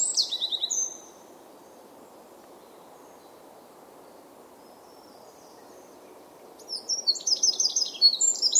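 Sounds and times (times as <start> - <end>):
Eurasian wren Troglodytes troglodytes song trills: 0.0 - 1.2, 4.6 - 8.5
low hiss: 0.0 - 8.5.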